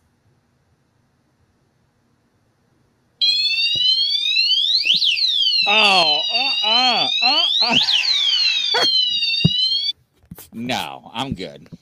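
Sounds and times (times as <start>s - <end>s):
motion detector alarm blaring shrill electronic tone: 3.2s - 9.9s
speech: 5.6s - 8.0s, 8.8s - 9.0s, 10.6s - 11.8s.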